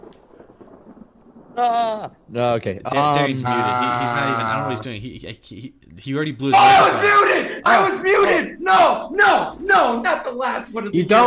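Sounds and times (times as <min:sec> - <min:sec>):
thunderclap sound effect: 0:00.0 - 0:04.8
speech: 0:01.6 - 0:11.2.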